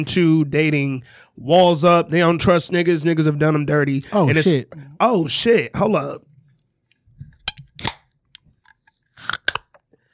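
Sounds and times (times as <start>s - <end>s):
speech: 0.0s - 6.3s
drink can cracked open: 7.5s - 8.2s, 9.1s - 9.8s.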